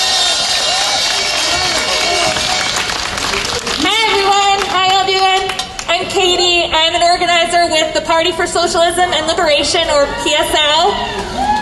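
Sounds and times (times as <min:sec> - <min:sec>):
crowd cheering and whooping: 0:00.0 - 0:05.8, 0:09.9 - 0:11.5
crowd applauding: 0:00.0 - 0:05.9
speech: 0:06.1 - 0:11.5.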